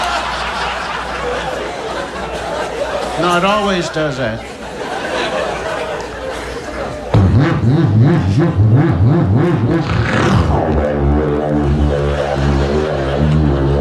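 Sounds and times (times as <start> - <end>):
people chattering and laughing: 0.0 - 13.7
speech: 3.2 - 4.5
car engine revving loudly: 7.2 - 13.7.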